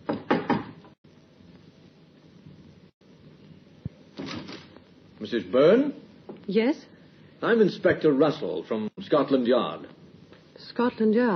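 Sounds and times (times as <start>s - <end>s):
knocks on the wooden door of a small flat: 0.0s - 0.9s
quiet room hiss: 0.0s - 11.3s
speech: 5.2s - 10.0s, 10.6s - 11.3s.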